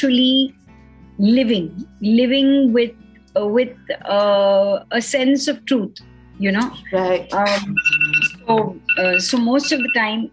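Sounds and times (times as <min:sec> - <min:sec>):
speech: 0:00.0 - 0:00.6, 0:01.2 - 0:10.3
phone alarm ringing with high electronic tone: 0:07.8 - 0:10.3.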